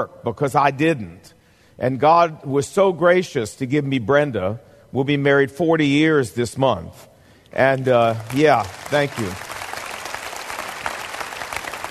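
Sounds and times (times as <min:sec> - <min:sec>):
speech: 0:00.0 - 0:09.5
audience applause: 0:07.9 - 0:11.8.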